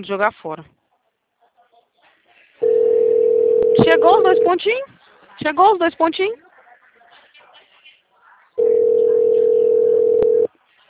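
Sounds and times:
speech: 0.0 - 0.8, 3.8 - 6.4
faint noise: 0.0 - 10.8
WhatsApp call ringing tone: 2.6 - 4.7, 8.6 - 10.5.

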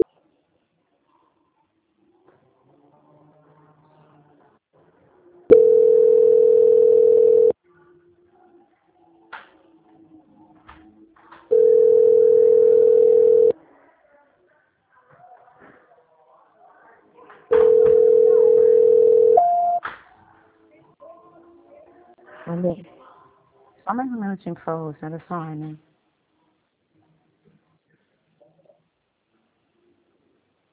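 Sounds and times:
long steady mid-pitched telephone beeps during a call transfer: 5.5 - 7.5, 11.5 - 13.5, 17.6 - 19.8
speech: 24.4 - 25.9.

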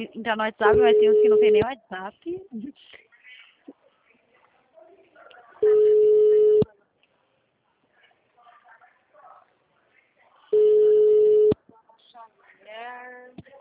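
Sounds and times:
speech: 0.0 - 3.0
steady telephone tones on an unanswered call: 0.7 - 1.7, 5.6 - 6.7, 10.6 - 11.6.

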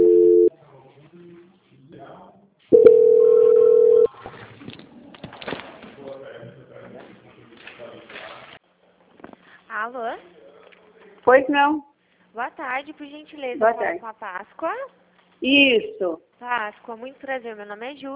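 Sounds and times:
telephone tones during a call transfer: 0.0 - 0.5, 2.8 - 4.1
speech: 11.3 - 18.1.

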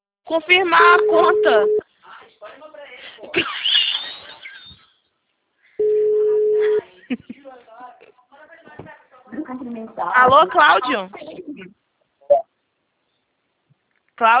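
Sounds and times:
speech: 0.3 - 1.8, 7.1 - 7.3, 9.4 - 11.8, 14.2 - 14.3
steady mid-pitched telephone tone while dialing to call back after a dropped call: 0.8 - 1.8, 5.8 - 6.8.

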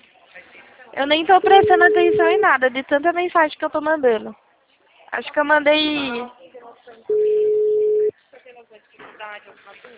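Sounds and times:
speech: 1.0 - 4.4, 5.1 - 7.5, 8.6 - 9.9
telephone ringback tone on an unanswered call: 1.4 - 2.6, 7.1 - 8.1.

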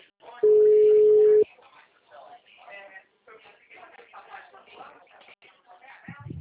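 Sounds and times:
people talking on a phone line: 0.0 - 6.3
telephone tone after a dropped phone call: 0.4 - 1.4.

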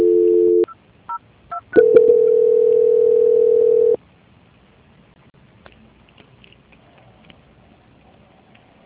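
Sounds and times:
telephone call transfer tones: 1.5 - 4.0.

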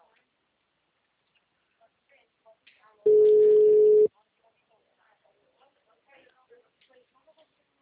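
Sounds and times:
ringback tone of an unanswered telephone call: 3.1 - 4.1.

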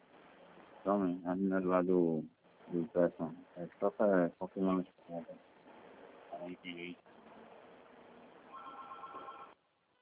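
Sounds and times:
speech: 0.8 - 5.5, 6.4 - 7.1
telephone ringing with an incoming call: 8.5 - 9.6.

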